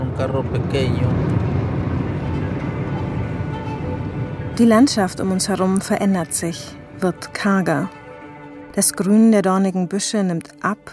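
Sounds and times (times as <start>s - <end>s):
road noise from inside a small sedan driving: 0.0s - 8.7s
speech: 0.2s - 1.4s, 4.6s - 8.0s, 8.8s - 10.9s.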